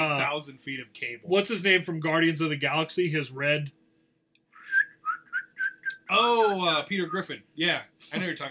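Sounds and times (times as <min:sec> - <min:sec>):
speech: 0:00.4 - 0:03.8, 0:06.1 - 0:08.4
person whistling a melodic phrase imitating a film character's arrow-control whistle: 0:04.6 - 0:06.0.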